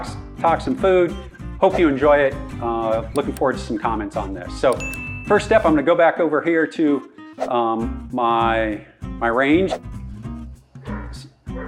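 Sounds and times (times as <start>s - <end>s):
speech: 0.0s - 10.0s
dogs barking and whining outdoors: 10.9s - 11.6s.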